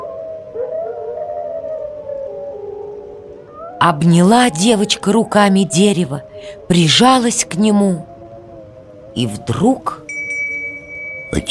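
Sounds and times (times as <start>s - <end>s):
wolves howling in a dark forest: 0.0s - 11.4s
speech: 3.8s - 8.1s, 9.2s - 10.0s.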